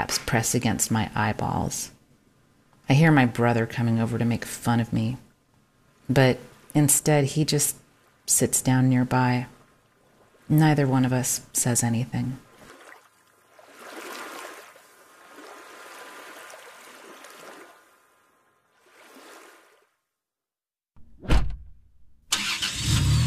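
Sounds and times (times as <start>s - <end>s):
speech: 0.0s - 2.0s, 2.9s - 5.2s, 6.1s - 9.6s, 10.5s - 12.5s
car road and engine noise driving down from the mountains in fall: 22.3s - 23.2s.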